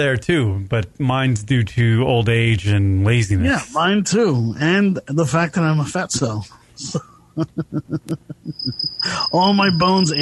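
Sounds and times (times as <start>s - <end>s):
speech: 0.0s - 10.2s
laughter: 6.8s - 9.3s
cricket chirping: 8.4s - 10.2s
thin high tone: 8.4s - 10.2s.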